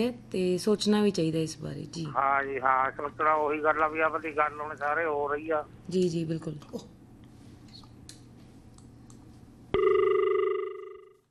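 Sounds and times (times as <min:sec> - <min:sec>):
speech: 0:00.0 - 0:07.0
phone line tone after call disconnects: 0:09.8 - 0:11.2.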